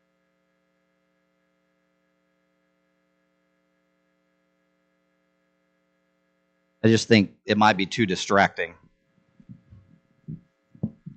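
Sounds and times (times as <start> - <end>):
speech: 6.8 - 8.8
microphone handling thumps while switching mics: 9.4 - 11.1.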